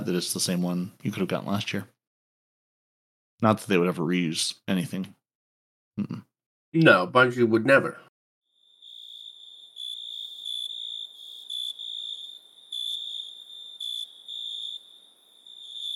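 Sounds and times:
speech: 0.0 - 2.0, 3.4 - 5.2, 6.0 - 8.1
cricket chirping: 8.5 - 15.9.

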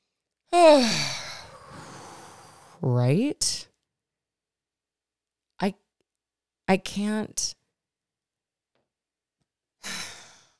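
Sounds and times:
deep breath released as a loud voiced sigh: 0.6 - 2.8
speech: 2.8 - 3.7, 5.6 - 5.8, 6.7 - 7.6.

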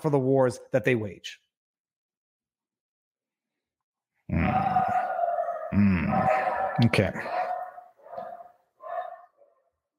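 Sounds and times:
speech: 0.0 - 1.4, 5.7 - 7.4
dog barking: 4.5 - 9.7.

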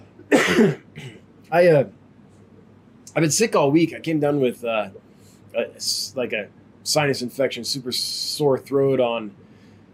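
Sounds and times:
person coughing: 0.3 - 1.3
speech: 0.4 - 2.0, 3.1 - 9.5.

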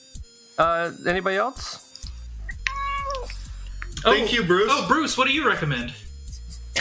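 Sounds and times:
speech: 0.6 - 1.8, 4.0 - 6.0
cat meowing: 2.5 - 3.5.

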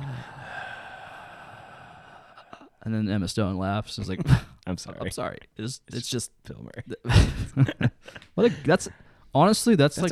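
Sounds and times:
person imitating a long drawn-out inhale: 0.0 - 2.8
speech: 2.8 - 10.1.

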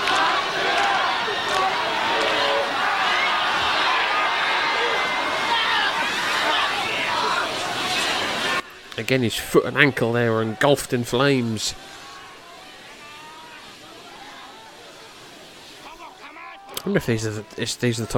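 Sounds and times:
large arena wrestling crowd chanting a name in unison: 0.0 - 8.9, 9.8 - 16.8
speech: 9.1 - 12.0, 16.9 - 18.1.

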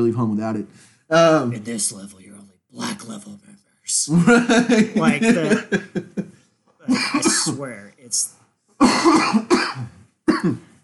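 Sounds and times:
speech: 0.0 - 6.3, 6.9 - 10.7
laughter: 4.1 - 6.5
harsh chesty coughs: 6.9 - 7.6, 8.8 - 10.8.

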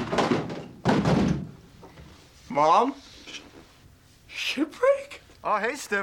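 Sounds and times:
someone barging into a locked door: 0.0 - 1.6
speech: 2.6 - 3.4, 4.5 - 6.0.

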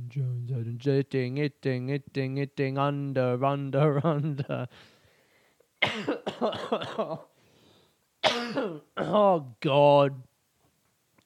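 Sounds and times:
speech: 0.1 - 4.9, 5.8 - 7.3, 8.5 - 10.3
raspy coughing: 5.8 - 7.3, 8.2 - 9.3.

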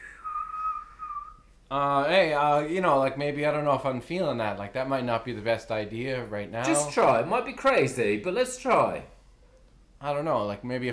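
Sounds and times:
person whistling a shrill tone in imitation of a boiling kettle: 0.0 - 1.5
speech: 1.7 - 9.1, 10.0 - 10.9.

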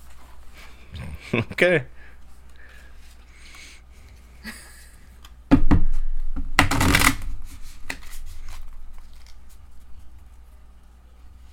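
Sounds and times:
speech: 1.3 - 2.0
deck of cards shuffled with a riffle and rustling: 6.8 - 10.4.

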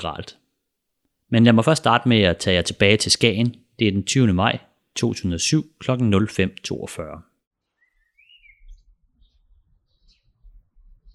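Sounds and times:
speech: 0.0 - 0.4, 1.3 - 7.3
birds chirping outdoors at dawn: 7.7 - 10.4.

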